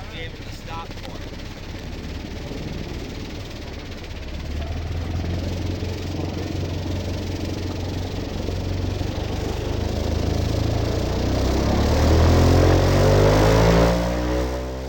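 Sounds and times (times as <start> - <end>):
airboat engine droning and revving: 0.0 - 14.8.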